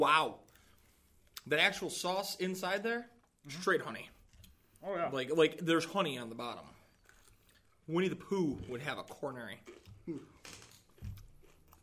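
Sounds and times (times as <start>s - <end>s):
speech: 0.0s - 0.4s, 1.4s - 4.2s, 4.8s - 6.8s, 7.9s - 10.6s
person biting into a chicken wing: 9.6s - 11.8s.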